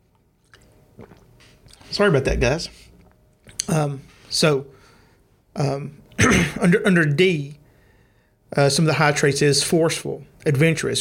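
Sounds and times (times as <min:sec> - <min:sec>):
person taking a quick sip of water: 0:00.1 - 0:03.7
swallowing: 0:00.4 - 0:02.0
speech: 0:01.9 - 0:02.9, 0:03.7 - 0:04.8, 0:05.6 - 0:07.6, 0:08.5 - 0:10.9.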